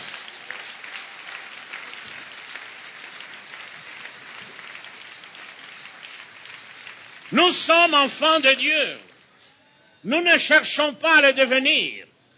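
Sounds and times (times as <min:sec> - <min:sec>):
congregation applauding during a church service: 0:00.0 - 0:09.6
speech: 0:07.3 - 0:09.1, 0:10.0 - 0:12.1.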